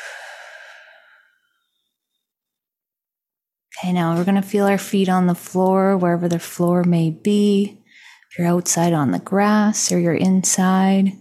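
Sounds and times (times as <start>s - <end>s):
deep exhale during a guided breathing exercise: 0.0s - 1.7s
speech: 3.8s - 11.1s.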